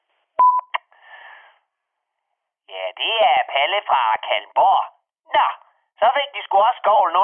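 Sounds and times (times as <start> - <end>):
answering machine beep of short electronic tones: 0.4 - 0.7
speech: 3.0 - 7.2.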